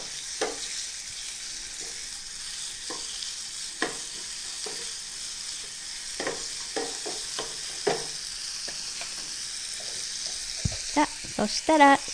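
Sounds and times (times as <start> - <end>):
stir-frying food sizzling in a pan: 0.0 - 12.1
spatula knocking and scraping against the pan: 0.4 - 0.7, 3.8 - 5.0, 6.1 - 8.2
speech: 11.0 - 12.1.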